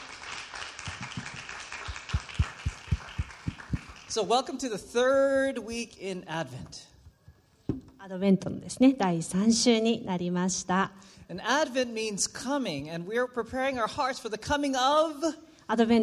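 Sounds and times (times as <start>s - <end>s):
audience clapping rhythmically for a dance team: 0.0s - 4.3s
speech: 4.2s - 6.9s, 8.1s - 16.0s.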